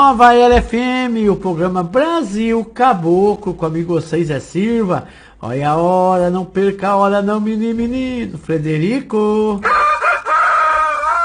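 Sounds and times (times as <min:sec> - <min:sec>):
speech: 0:00.0 - 0:09.8
rooster crowing: 0:09.6 - 0:11.2.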